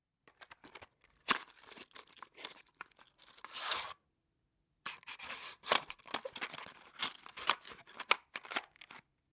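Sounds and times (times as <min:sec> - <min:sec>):
box opening: 0:00.4 - 0:04.0, 0:04.9 - 0:09.0.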